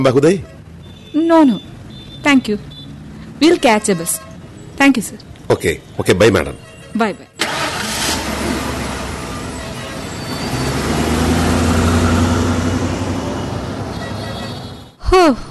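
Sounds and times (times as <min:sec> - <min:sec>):
speech: 0:00.0 - 0:02.7, 0:03.4 - 0:07.3, 0:15.2 - 0:15.4
police jeep engine rumbling as it pulls away from a bus stand: 0:07.4 - 0:13.8.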